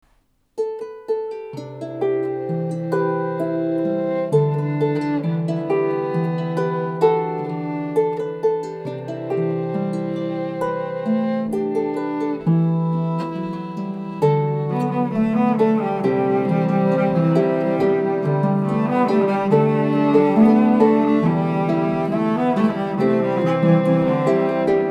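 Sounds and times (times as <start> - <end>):
harp playing a pop song: 0.6 - 24.8.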